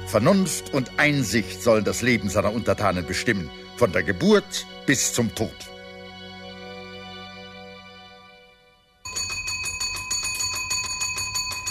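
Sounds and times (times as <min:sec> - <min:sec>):
speech: 0:00.1 - 0:05.7
small bell ringing rapidly and continuously: 0:09.1 - 0:11.7.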